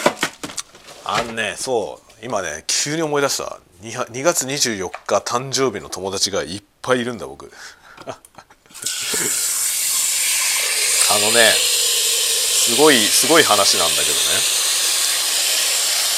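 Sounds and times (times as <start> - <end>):
speech: 1.1 - 8.4, 11.2 - 11.6, 12.7 - 14.6
laughter: 8.1 - 9.4
water pouring from a tap into a pot: 8.8 - 16.1.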